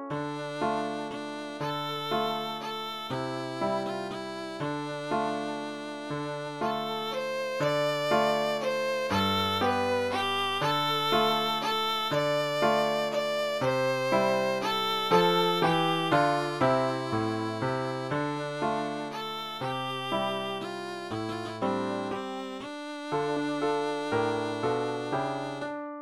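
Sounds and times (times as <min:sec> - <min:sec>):
violin solo: 0:00.1 - 0:25.7.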